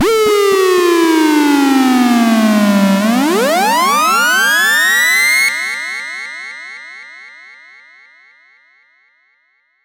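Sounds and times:
siren: 0.0s - 7.0s.

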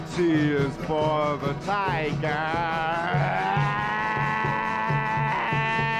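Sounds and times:
speech: 0.2s - 3.7s
sheep bleating: 2.9s - 5.9s.

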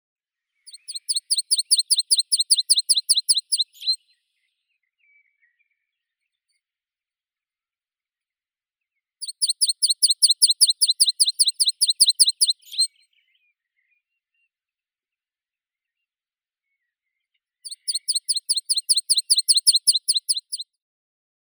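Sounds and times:
meadow pipit Anthus pratensis: 0.7s - 4.0s, 9.2s - 12.9s, 17.7s - 20.6s.

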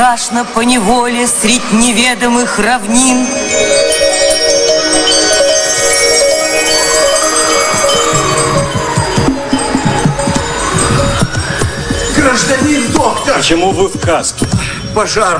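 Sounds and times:
speech: 0.0s - 4.2s, 12.3s - 15.3s
small sleigh bells jingling: 2.9s - 15.3s
soft wavering whistle-like tone: 4.8s - 13.4s.

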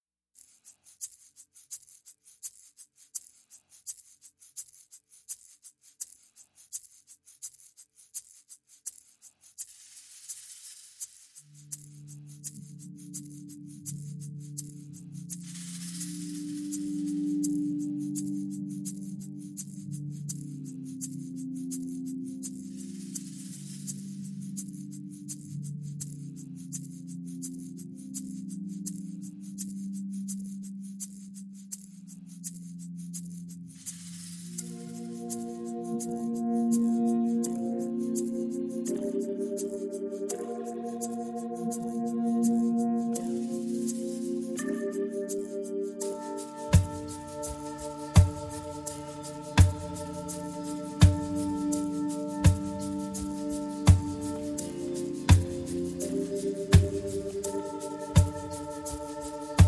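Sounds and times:
percussion: 0.3s - 59.6s
synth pads: 11.5s - 30.2s, 33.6s - 59.6s.

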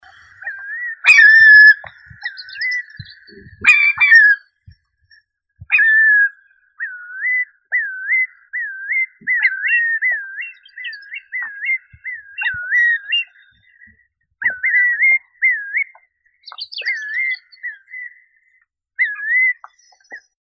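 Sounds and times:
Far Eastern curlew Numenius madagascariensis call: 0.0s - 4.4s, 5.7s - 13.4s, 14.4s - 18.2s.

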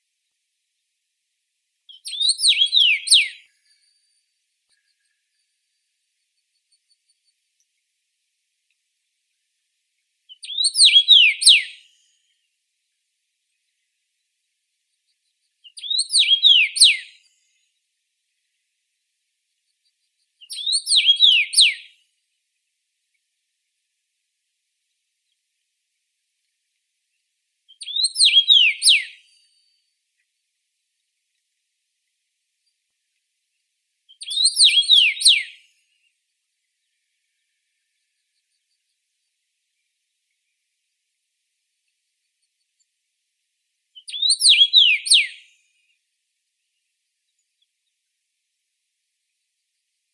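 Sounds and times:
common rosefinch Carpodacus erythrinus: 1.9s - 3.5s, 10.3s - 12.1s, 15.0s - 17.7s, 19.8s - 21.9s, 27.7s - 29.7s, 34.1s - 35.7s, 44.0s - 45.5s.

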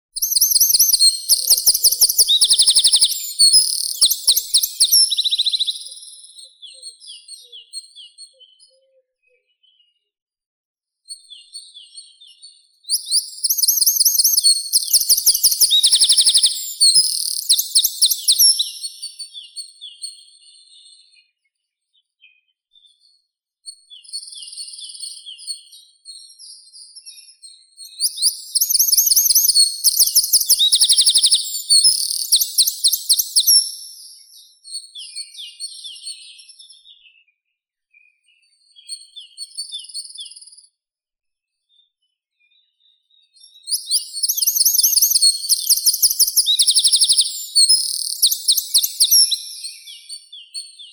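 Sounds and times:
wren Troglodytes troglodytes singing: 0.1s - 6.4s, 12.9s - 19.2s, 27.9s - 34.4s, 43.6s - 50.3s.

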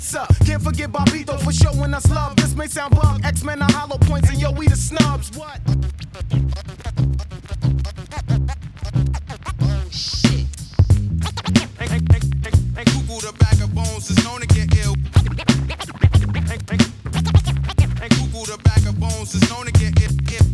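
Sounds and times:
steady loud hip-hop beat with low drum pulses: 0.0s - 5.6s, 9.3s - 20.5s
speech: 0.0s - 7.3s
DJ scratching a vinyl record on a turntable with fast fader cuts: 6.6s - 20.5s.

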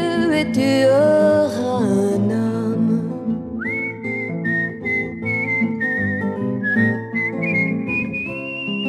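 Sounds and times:
speech: 0.4s - 3.1s
instrumental backing music: 1.9s - 8.8s
young woman whistling a tune: 3.6s - 8.8s.

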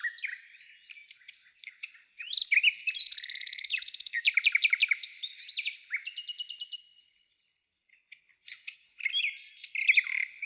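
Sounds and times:
nightingale singing dense trilled and rattling phrases: 0.0s - 10.4s.

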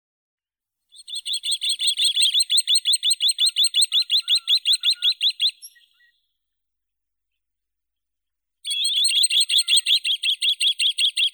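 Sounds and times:
green sandpiper Tringa ochropus calling: 1.0s - 6.0s, 8.7s - 11.2s.

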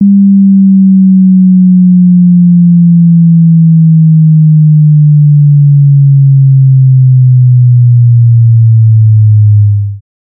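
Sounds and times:
200 Hz to 100 Hz tone sweep: 0.0s - 9.9s.

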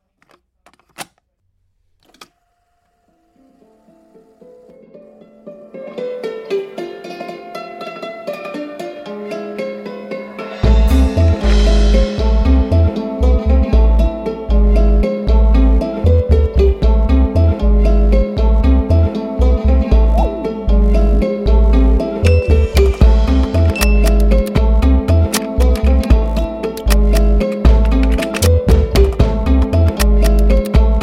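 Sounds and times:
dulcimer loop: 4.7s - 31.0s.

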